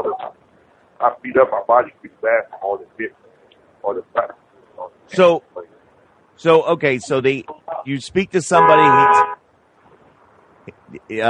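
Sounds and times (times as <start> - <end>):
low steady traffic rumble: 0.0 - 0.3, 1.0 - 11.2
speech: 1.0 - 3.2, 3.8 - 4.4, 5.1 - 5.8, 6.4 - 9.4, 10.7 - 11.2
car horn honking at airport: 8.6 - 9.4.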